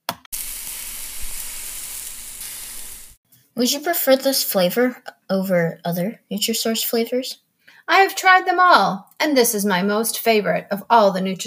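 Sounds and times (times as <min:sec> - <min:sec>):
lamb sizzling on a hot grill: 0:00.3 - 0:03.2
speech: 0:03.6 - 0:11.4.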